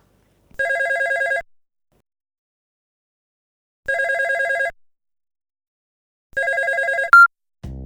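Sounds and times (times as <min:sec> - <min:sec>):
telephone ringing with a rapid trilling bell: 0:00.6 - 0:01.4, 0:03.9 - 0:04.7, 0:06.4 - 0:07.3.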